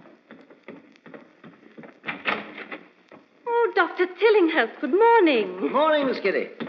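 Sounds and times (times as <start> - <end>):
front door being opened with clicks, knocks and rattling clatter: 2.0 - 2.9
speech: 3.8 - 6.6.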